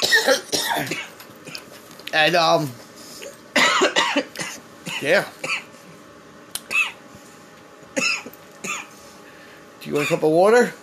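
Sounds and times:
person coughing harshly after a deep inhale of a hit: 0.0s - 1.7s, 3.5s - 5.7s, 6.7s - 7.0s, 8.0s - 9.0s, 10.0s - 10.3s
speech: 0.2s - 1.0s, 2.1s - 2.8s, 5.0s - 5.4s, 9.9s - 10.8s.

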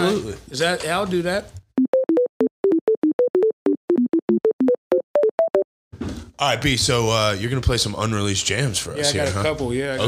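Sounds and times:
speech: 0.0s - 1.6s, 6.4s - 10.0s
Bluetooth pairing tone of short electronic beeps on a mixer as a phone connects: 1.8s - 5.6s.

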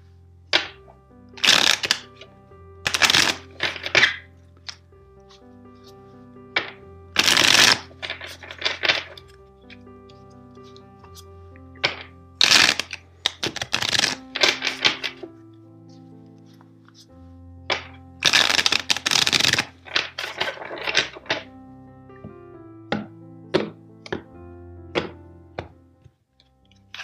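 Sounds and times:
soft sustained music: 0.0s - 27.0s
tarot cards being shuffled in crisp crackling riffles: 1.4s - 2.2s, 2.9s - 6.0s, 6.6s - 9.3s, 10.6s - 15.4s, 16.6s - 21.5s, 26.8s - 27.0s.

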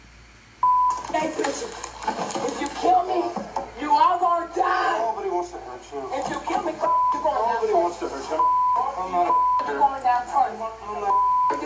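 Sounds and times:
censor bleep pure tone: 0.6s - 1.0s, 8.4s - 9.8s, 11.1s - 11.6s
speech: 1.2s - 11.6s.

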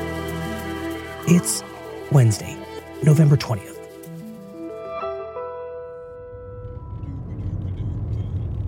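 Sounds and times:
speech: 1.3s - 3.7s
road rumble inside a car driving from Columbia to Greenwood South Carolina: 6.6s - 8.6s.

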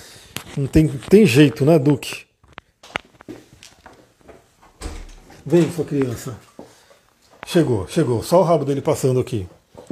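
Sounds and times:
speech: 0.6s - 2.3s, 5.5s - 6.5s, 7.5s - 9.8s
door swinging open with a thud and low rumbling scrape: 4.7s - 5.7s.

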